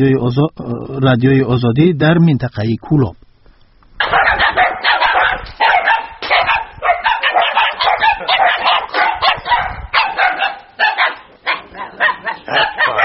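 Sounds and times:
speech: 0:00.0 - 0:03.2, 0:04.0 - 0:04.2
stray dogs barking in the streets of a town: 0:04.0 - 0:13.0.

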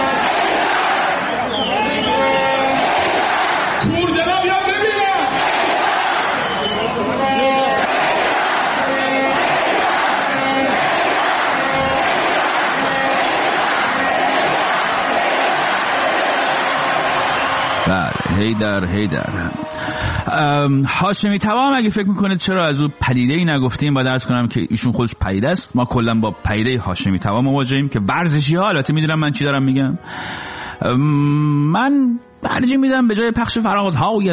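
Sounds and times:
stadium crowd of football fans performing a Viking clap chant: 0:00.0 - 0:18.6
speech: 0:18.5 - 0:34.3.

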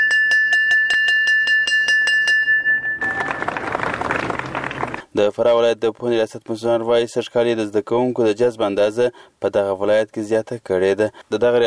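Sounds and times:
school bell rung at a new school year opening ceremony: 0:00.0 - 0:03.6
dense wash of broad noise: 0:02.8 - 0:05.4
speech: 0:05.2 - 0:11.6.

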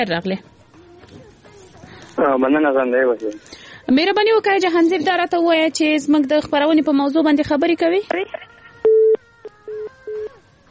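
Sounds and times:
speech: 0:00.0 - 0:01.2, 0:02.2 - 0:08.5
telephone busy tone after a call is cut off: 0:08.8 - 0:10.3.

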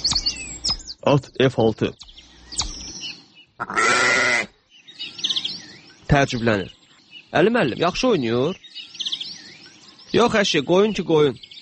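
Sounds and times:
speech: 0:01.0 - 0:02.0, 0:03.6 - 0:03.9, 0:06.1 - 0:08.6, 0:10.1 - 0:11.5
sharp click: 0:02.0 - 0:03.0
sheep bleating: 0:03.6 - 0:04.6.

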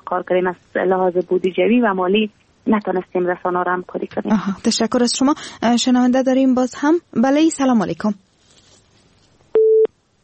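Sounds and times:
speech: 0:00.1 - 0:08.3
telephone busy tone after a call is cut off: 0:09.6 - 0:09.9.

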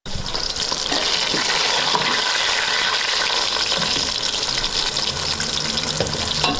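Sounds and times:
tomatoes and onions frying in a pot for qorma in a Kabul home kitchen: 0:00.1 - 0:06.5.

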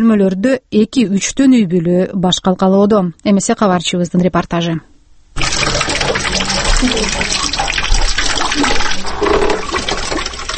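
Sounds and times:
speech: 0:00.0 - 0:05.7, 0:06.4 - 0:07.7
rainwater from a leaking roof being poured out in a one-room flat: 0:05.4 - 0:10.5.

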